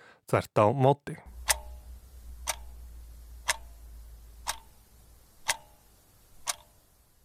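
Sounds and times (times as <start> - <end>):
speech: 0.3 - 1.3
faint low hum: 1.2 - 7.2
clock ticking: 1.3 - 7.0.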